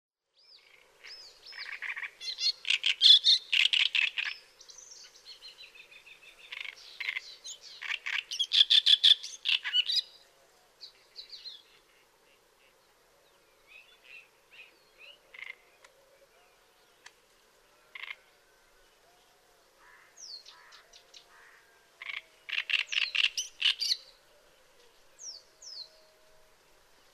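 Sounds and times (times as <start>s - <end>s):
Acrocephalus arundinaceus: 0.4s - 10.2s, 10.8s - 15.9s, 17.9s - 18.3s, 19.8s - 24.2s.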